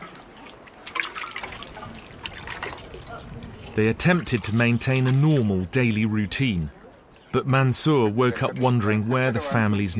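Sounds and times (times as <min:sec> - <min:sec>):
children pouring water drawn from a borehole: 0:00.0 - 0:05.5
water splashing and trickling as children draw water from a borehole: 0:00.0 - 0:09.9
speech: 0:03.8 - 0:09.9.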